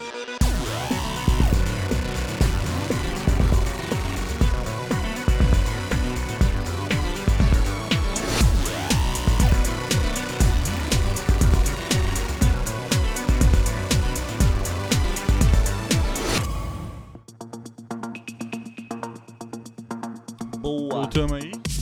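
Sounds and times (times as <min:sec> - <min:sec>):
energetic podcast intro jingle with pounding drums: 0:00.4 - 0:17.2
softer sparser musical tail: 0:00.4 - 0:17.2.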